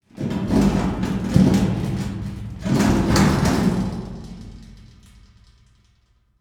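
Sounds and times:
hollow metal can dragging on cement: 0:00.1 - 0:04.5.

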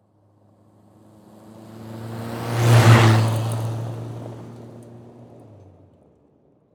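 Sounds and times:
Saturn car driving by fast on a dirt road: 0:01.0 - 0:05.6.

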